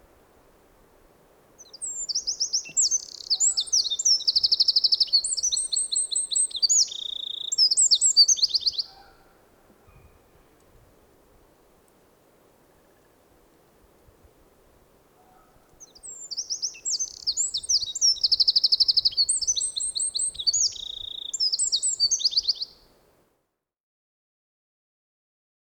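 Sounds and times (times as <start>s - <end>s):
Eurasian wren trilling song: 1.6s - 9.2s, 15.2s - 22.8s.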